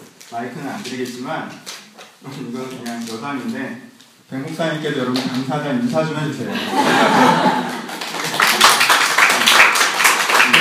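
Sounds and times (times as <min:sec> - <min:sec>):
speech: 0:00.3 - 0:07.8
laughter: 0:06.5 - 0:08.9
church audience clapping: 0:07.2 - 0:10.5.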